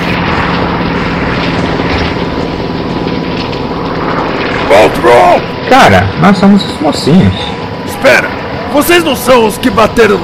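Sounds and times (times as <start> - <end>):
helicopters roaring with rotor chop: 0.0 - 10.2
speech: 4.8 - 10.2.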